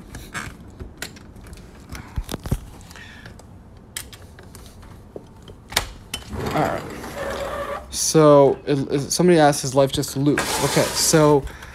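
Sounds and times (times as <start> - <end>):
door opening: 6.2 - 8.0
speech: 6.6 - 6.9, 8.0 - 11.6.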